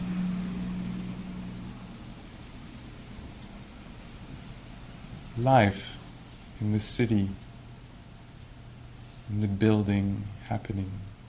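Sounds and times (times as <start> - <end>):
city traffic rumble: 0.0 - 9.0
faint constant hum: 0.0 - 11.2
speech: 5.4 - 5.9, 6.6 - 7.4, 9.3 - 11.1.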